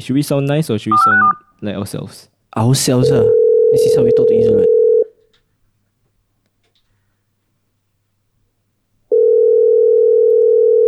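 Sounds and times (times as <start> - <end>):
speech: 0.0 - 4.8
telephone dial tone while placing a call: 3.3 - 5.0, 9.1 - 10.8.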